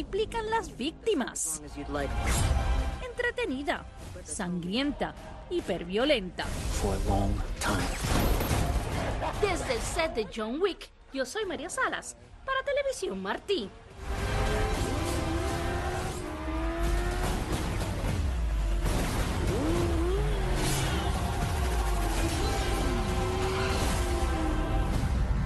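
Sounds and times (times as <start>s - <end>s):
speech: 0.0s - 8.2s, 9.2s - 14.2s
loud motorcycle engine revving: 14.0s - 25.3s.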